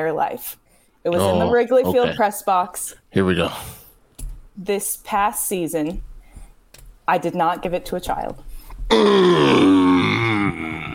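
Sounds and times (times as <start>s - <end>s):
speech: 0.0s - 3.8s, 4.6s - 6.1s, 7.1s - 9.7s
man groaning in approval: 1.2s - 2.2s, 8.9s - 10.9s.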